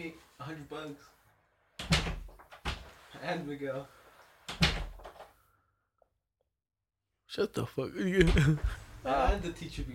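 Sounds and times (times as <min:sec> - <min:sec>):
speech: 0:00.0 - 0:01.2, 0:03.2 - 0:04.6, 0:07.3 - 0:09.9
door swinging shut: 0:01.8 - 0:03.0, 0:04.5 - 0:05.3.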